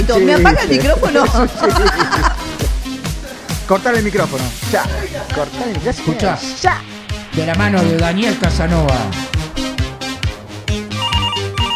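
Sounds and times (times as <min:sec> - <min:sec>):
speech: 0:00.0 - 0:02.4, 0:03.7 - 0:09.3
laughter: 0:00.3 - 0:03.7, 0:04.8 - 0:05.8
bright electronic telephone ringtone melody during a call-in: 0:10.9 - 0:11.7.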